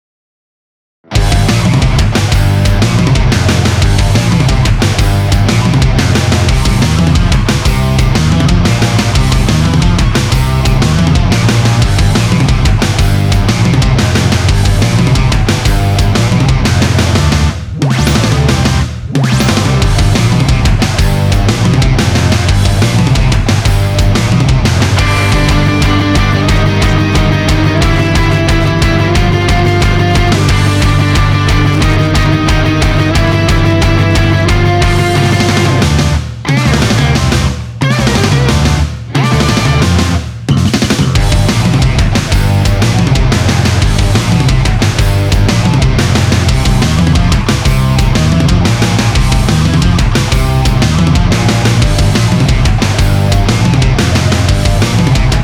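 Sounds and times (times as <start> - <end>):
rock beat: 1.1 - 55.4.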